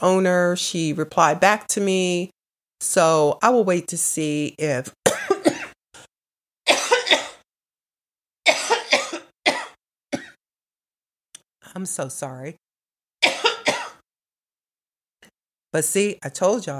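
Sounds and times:
speech: 0.0s - 5.6s, 11.7s - 12.6s, 15.7s - 16.7s
harsh coughing fit: 5.0s - 5.8s, 6.7s - 7.4s, 8.5s - 10.4s, 13.2s - 14.0s.

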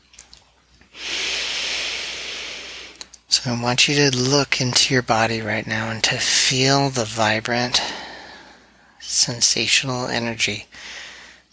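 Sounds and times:
breath sounds during a guided breathing exercise: 0.9s - 3.0s, 7.7s - 9.0s, 10.7s - 11.5s
speech: 3.4s - 8.0s, 9.2s - 11.0s.

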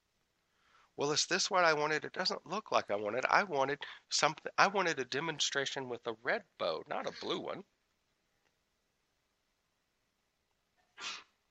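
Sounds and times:
speech: 1.0s - 7.7s
sharp sneeze: 11.0s - 11.3s.

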